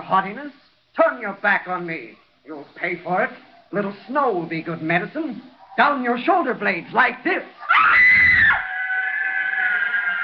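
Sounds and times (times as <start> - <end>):
speech: 0.1 - 8.2
woman screaming with rage: 7.6 - 10.2.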